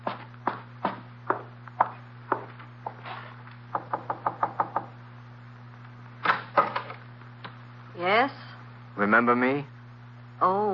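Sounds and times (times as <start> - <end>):
footsteps climbing stairs in a five-story house in Greenwich Village: 0.0 - 3.2
low constant hum: 0.0 - 10.7
speech: 9.0 - 9.7, 10.4 - 10.7.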